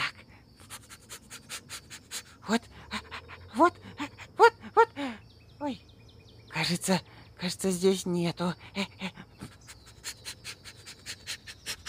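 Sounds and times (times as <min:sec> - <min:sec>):
voice imitating a dog sniffing and panting: 0:00.0 - 0:05.0, 0:09.0 - 0:11.8
speech: 0:02.5 - 0:02.7, 0:03.6 - 0:03.9, 0:06.7 - 0:09.0.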